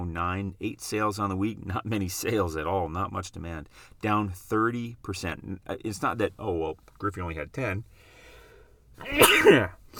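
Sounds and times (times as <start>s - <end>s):
speech: 0.2s - 8.1s, 9.0s - 9.9s
person sneezing: 9.0s - 9.9s.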